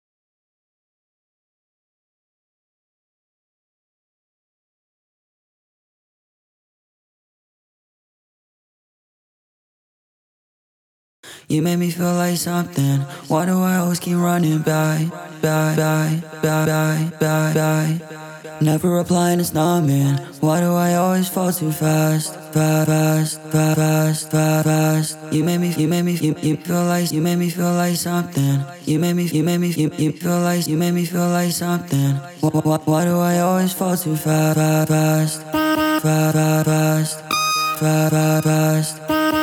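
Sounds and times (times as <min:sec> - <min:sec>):
main vocal: 0:11.2 - 0:39.4.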